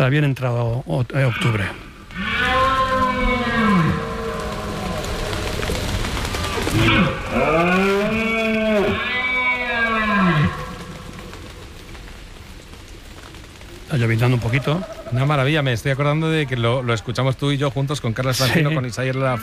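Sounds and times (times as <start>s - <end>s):
speech: 0.0s - 2.4s, 13.9s - 19.4s
red deer stags bellowing in the hills during the autumn rut: 1.2s - 5.7s, 6.4s - 11.1s.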